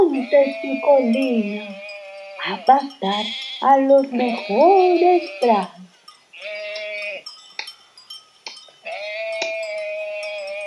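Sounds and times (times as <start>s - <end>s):
grazing sheep bleating: 0.0s - 5.8s, 6.4s - 7.3s, 8.8s - 10.6s
speech: 0.3s - 6.6s.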